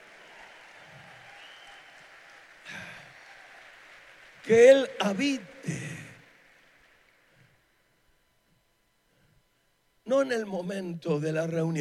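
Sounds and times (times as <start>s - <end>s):
audience applause: 0.0s - 7.6s
speech: 4.4s - 5.8s, 10.3s - 11.7s.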